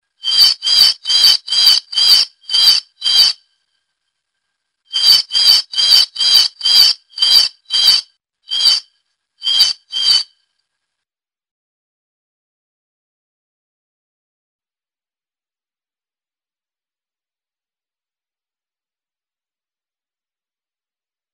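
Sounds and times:
exotic bird: 0.2s - 3.4s, 4.9s - 10.3s.

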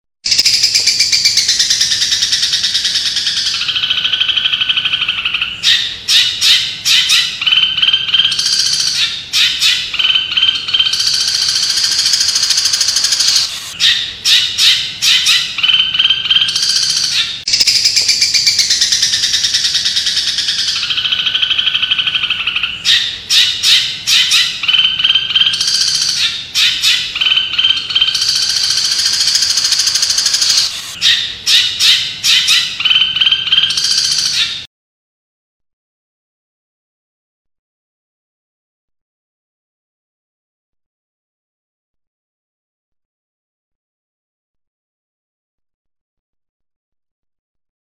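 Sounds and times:
cendet bird chirping: 0.3s - 34.7s.

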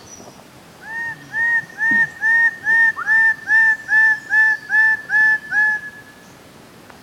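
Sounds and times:
blue bird-of-paradise Paradisaea rudolphi calling: 0.8s - 6.3s.

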